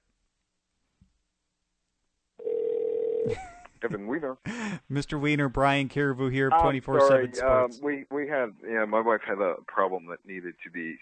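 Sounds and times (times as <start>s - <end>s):
electronic ringback tone of an outgoing phone call: 2.4s - 3.3s
speech: 3.3s - 11.0s.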